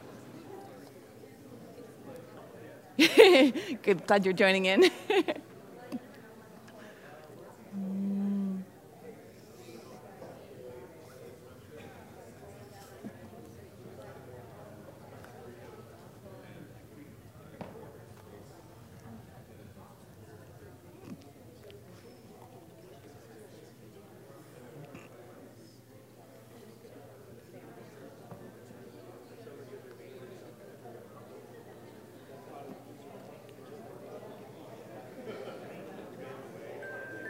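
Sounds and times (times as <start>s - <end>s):
roomful of people talking in small table groups: 0.0s - 37.2s
laughter: 3.0s - 4.0s, 4.7s - 5.5s, 35.2s - 35.9s
speech: 3.0s - 5.4s.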